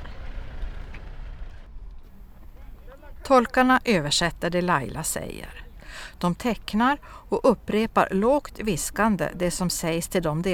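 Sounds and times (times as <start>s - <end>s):
heavy vehicle rumbling past with engine drone and road noise: 0.0s - 3.2s
speech: 3.3s - 10.5s.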